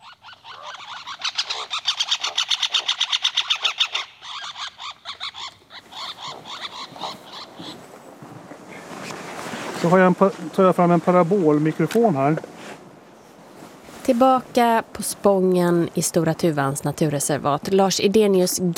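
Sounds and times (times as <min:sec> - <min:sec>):
two birds trading aggression calls on a trunk: 0:00.0 - 0:07.8
speech: 0:09.8 - 0:12.5, 0:14.1 - 0:18.7.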